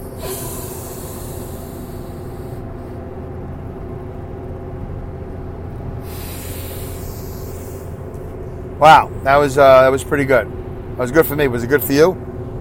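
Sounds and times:
long forceful exhale of a deep breath during a breathing test: 0.0s - 3.0s, 6.0s - 8.0s
speech: 8.8s - 12.3s.

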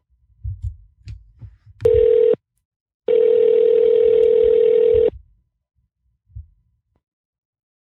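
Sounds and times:
phone ringback tone while placing a call: 1.9s - 2.4s, 3.1s - 5.1s.

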